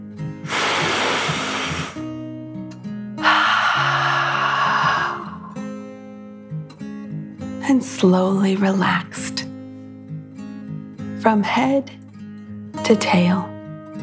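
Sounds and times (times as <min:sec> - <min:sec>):
deep slow breath in and out: 0:00.4 - 0:02.0, 0:03.2 - 0:05.7
speech: 0:07.7 - 0:09.5, 0:11.2 - 0:12.0, 0:12.9 - 0:13.5.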